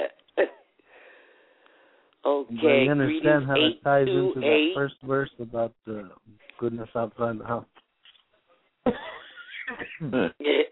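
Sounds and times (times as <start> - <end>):
speech: 2.3 - 7.8, 10.0 - 10.5
person coughing: 9.7 - 10.7.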